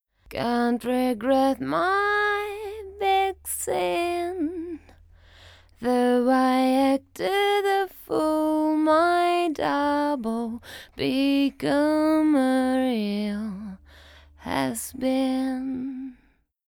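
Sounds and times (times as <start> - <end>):
solo vocal: 0.3 - 5.0, 5.8 - 16.2.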